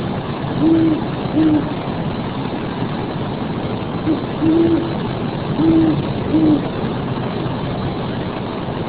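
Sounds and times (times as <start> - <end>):
steady low engine hum: 0.0 - 8.8
owl giving short low hoots: 0.6 - 1.7, 4.1 - 5.0, 5.6 - 6.7.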